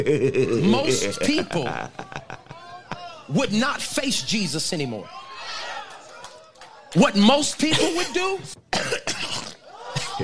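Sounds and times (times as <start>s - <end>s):
speech: 0.0s - 2.4s, 3.3s - 5.2s, 6.9s - 9.2s
laughter: 0.0s - 3.7s, 7.2s - 8.5s, 9.7s - 10.2s
person coughing: 7.8s - 10.2s.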